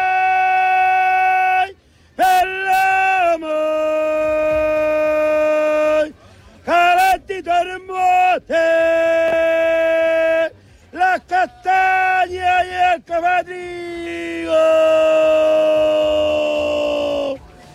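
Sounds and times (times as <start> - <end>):
man shouting battle cry: 0.0 - 6.1, 6.7 - 17.4
man whooping yells: 0.0 - 6.1, 6.7 - 17.4
man hollering: 0.0 - 17.4.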